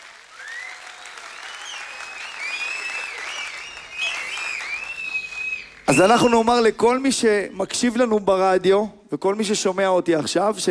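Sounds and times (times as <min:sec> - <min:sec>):
audience applause: 0:00.0 - 0:06.6
shrill whistles: 0:00.3 - 0:06.7
speech: 0:05.9 - 0:10.6.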